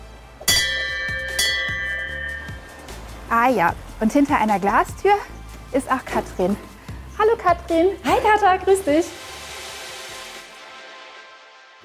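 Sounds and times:
large bell ringing in a winery courtyard: 0.4 - 3.7
speech: 3.3 - 9.2.

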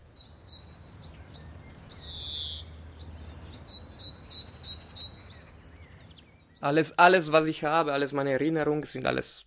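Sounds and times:
low rumbling background: 0.0 - 6.7
birds chirping and trilling outdoors: 0.0 - 8.2
speech: 6.6 - 9.4.

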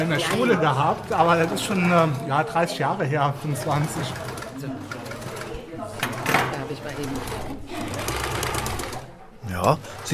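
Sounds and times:
speech: 0.0 - 4.9, 9.6 - 10.1
indistinct voices in a busy room: 0.0 - 10.1
sewing machine running: 0.0 - 10.1.

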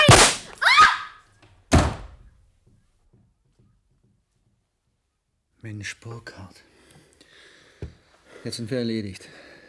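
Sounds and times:
single gunshot bang: 0.1 - 0.5, 1.7 - 2.2
speech: 5.6 - 6.7, 7.8 - 9.4.

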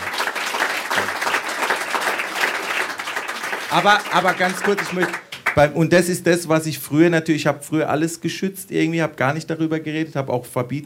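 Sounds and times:
crowd applauding with many hands clapping: 0.0 - 5.8
speech: 3.7 - 10.8.

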